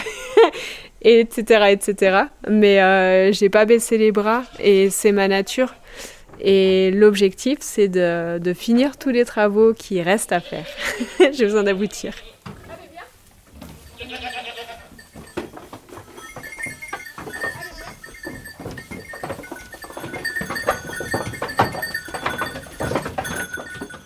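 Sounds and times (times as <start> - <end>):
speech: 1.0 - 12.3
goats bleating: 10.3 - 12.9, 13.9 - 15.4, 16.1 - 18.7
knocks and clattering: 12.4 - 24.0.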